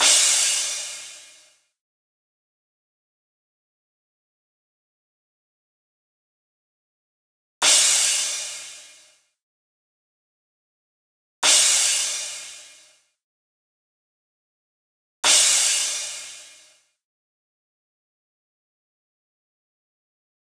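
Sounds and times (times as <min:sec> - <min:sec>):
future house crash cymbals: 0:00.0 - 0:01.6, 0:07.6 - 0:09.2, 0:11.4 - 0:13.0, 0:15.2 - 0:16.9.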